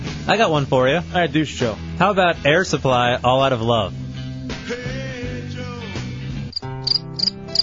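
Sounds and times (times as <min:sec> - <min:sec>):
speech: 0:00.3 - 0:04.0
crickets chirping: 0:06.5 - 0:07.6.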